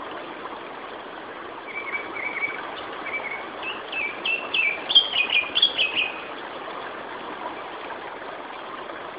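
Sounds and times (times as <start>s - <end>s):
constant hiss: 0.0s - 9.1s
Turdus cardis singing whistled phrases: 1.7s - 6.2s.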